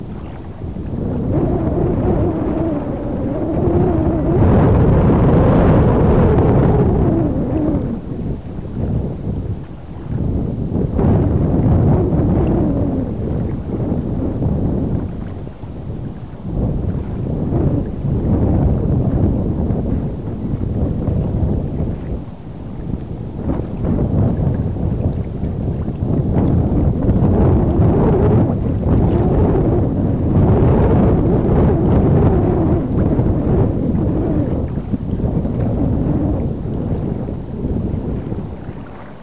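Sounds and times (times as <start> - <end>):
winter wind: 0.0 - 39.2.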